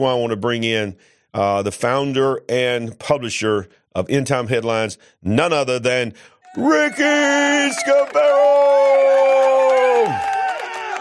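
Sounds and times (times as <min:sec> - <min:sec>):
speech: 0:00.0 - 0:09.4
crowd cheering with whoops and shouts: 0:06.4 - 0:11.0.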